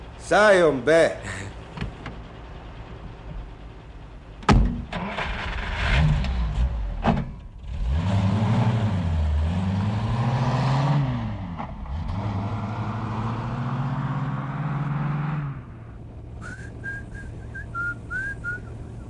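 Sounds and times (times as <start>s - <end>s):
speech: 0.3s - 1.5s
BMW car engine starting and revving: 4.4s - 19.0s.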